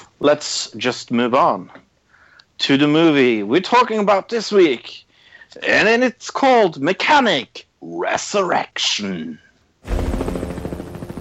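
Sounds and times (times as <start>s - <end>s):
speech: 0.2s - 1.8s, 2.6s - 10.0s
helicopter in an action film: 9.8s - 11.1s.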